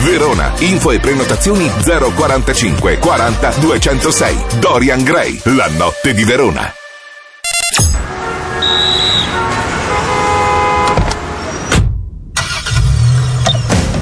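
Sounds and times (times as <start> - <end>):
speech: 0.2 - 6.8
city traffic: 7.4 - 13.9
Opel Corsa car horn toot: 8.0 - 11.1.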